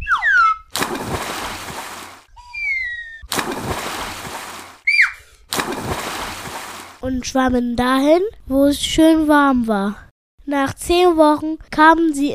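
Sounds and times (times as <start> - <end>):
loud splashes of jumping into water: 0.7 - 2.3, 3.3 - 4.8, 5.5 - 7.0
speech: 7.1 - 12.3.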